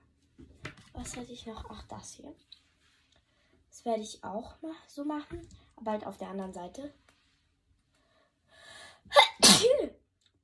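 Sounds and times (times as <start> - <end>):
speech: 1.0 - 2.6, 3.8 - 7.0
person sneezing: 9.1 - 10.0.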